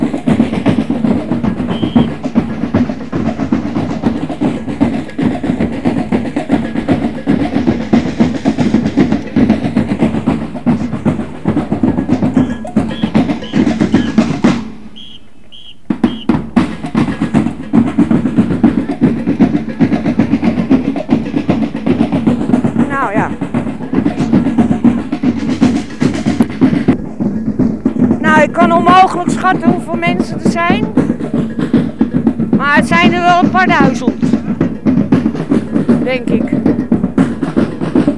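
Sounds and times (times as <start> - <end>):
African drum band playing in street procession: 0.0 - 38.1
short whistle blasts: 1.5 - 2.4, 12.3 - 16.5
speech: 29.2 - 31.0, 32.7 - 34.2, 36.1 - 36.6.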